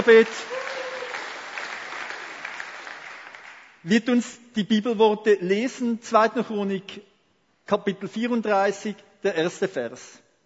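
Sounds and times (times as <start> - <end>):
speech: 0.0 - 0.6, 3.8 - 7.1, 7.7 - 10.2
audience applause at a church gathering: 0.0 - 3.8.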